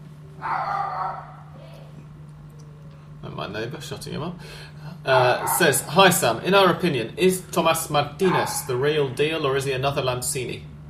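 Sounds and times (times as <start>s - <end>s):
steady low electrical hum: 0.0s - 10.8s
speech: 0.4s - 0.8s, 3.3s - 10.7s
drawn-out dog bark: 0.4s - 1.6s, 5.3s - 5.8s, 8.3s - 8.7s.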